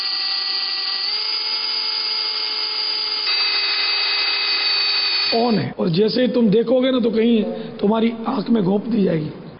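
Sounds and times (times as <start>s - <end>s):
electric drill whirring with high-pitched motor whine: 0.0s - 5.6s
speech: 5.3s - 9.4s.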